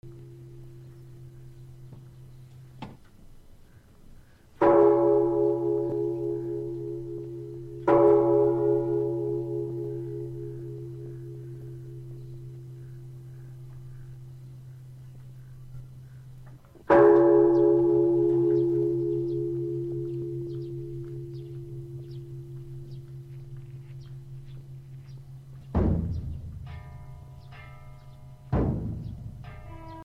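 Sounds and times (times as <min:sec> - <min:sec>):
Asian temple bell: 0:00.0 - 0:02.2, 0:04.6 - 0:14.4, 0:16.8 - 0:25.8, 0:26.6 - 0:30.0
Asian temple drum: 0:25.8 - 0:26.7.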